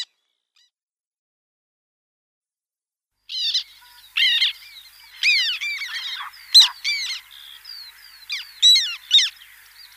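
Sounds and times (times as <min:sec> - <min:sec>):
Black tern giving clipped scratchy harsh calls: 0:03.3 - 0:09.9.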